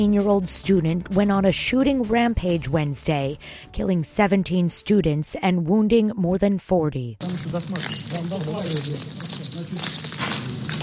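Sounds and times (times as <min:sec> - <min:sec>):
speech: 0:00.0 - 0:10.0
footsteps crunching on shattered glass: 0:07.2 - 0:10.8
shattered glass clinking: 0:07.2 - 0:10.8.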